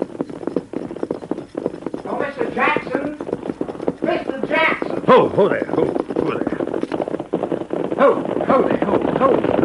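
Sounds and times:
horse hooves clip-clopping along a trail: 0:00.0 - 0:09.6
speech: 0:05.1 - 0:06.5, 0:08.0 - 0:09.6.

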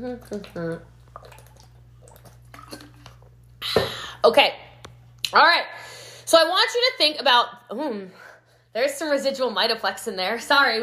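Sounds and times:
speech: 0:00.0 - 0:01.4, 0:04.2 - 0:04.6, 0:05.3 - 0:10.8
person sipping water: 0:00.0 - 0:03.6.

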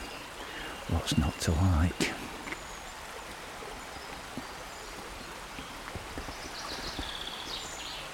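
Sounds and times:
faint birdsong chirps: 0:00.0 - 0:08.1
small stream flowing: 0:00.0 - 0:08.1
speech: 0:00.9 - 0:02.3.

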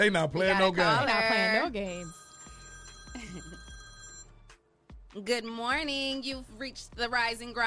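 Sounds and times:
speech: 0:00.0 - 0:02.2, 0:05.2 - 0:07.6
telephone ringing with an incoming call: 0:00.6 - 0:04.4.

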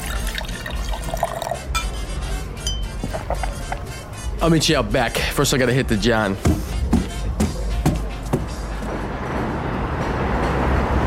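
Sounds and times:
drinks being poured into glasses: 0:00.0 - 0:02.0
light clinks of glassware: 0:00.0 - 0:02.0, 0:02.6 - 0:03.8
dense busy background: 0:00.0 - 0:11.0
speech: 0:04.4 - 0:06.6.

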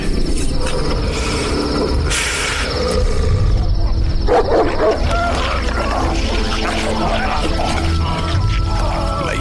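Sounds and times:
pack of dogs barking and snarling: 0:00.0 - 0:09.3.

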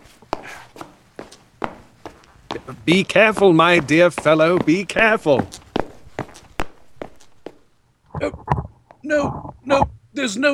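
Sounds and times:
footsteps running up old wooden stairs of an old hall: 0:00.0 - 0:07.7
speech: 0:02.7 - 0:05.6, 0:10.3 - 0:10.5.

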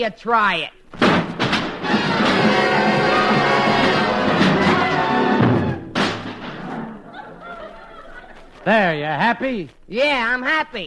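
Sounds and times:
speech: 0:00.0 - 0:01.2, 0:08.7 - 0:10.8
band's brass and percussion instruments banged over someone's head: 0:01.0 - 0:07.2
laughter: 0:07.0 - 0:09.0.

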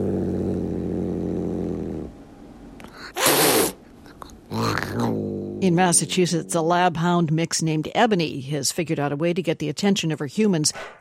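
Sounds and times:
tuxedo domestic cat growling at new kittens: 0:00.0 - 0:02.2, 0:03.0 - 0:07.0
tuxedo domestic cat hissing at new kittens: 0:02.9 - 0:06.4
speech: 0:05.6 - 0:10.9.

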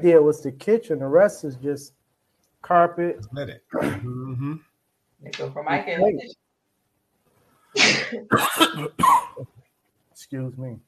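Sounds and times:
speech: 0:00.0 - 0:02.0, 0:02.6 - 0:06.4, 0:07.8 - 0:09.6, 0:10.2 - 0:10.8
man coughing harshly: 0:03.8 - 0:04.5, 0:08.0 - 0:09.5.

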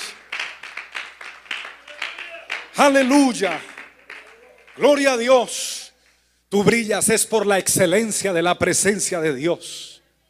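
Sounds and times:
audience clapping in rhythmic applause: 0:00.0 - 0:05.4
speech: 0:02.8 - 0:03.7, 0:04.8 - 0:05.7, 0:06.5 - 0:10.0.

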